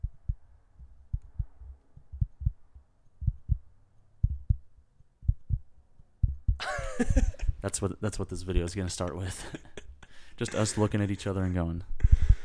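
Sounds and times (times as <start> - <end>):
voice imitating a heartbeat with low thumping beats: 0.0 - 2.6, 3.2 - 5.6, 6.2 - 6.7
speech: 7.0 - 9.7, 10.4 - 12.4.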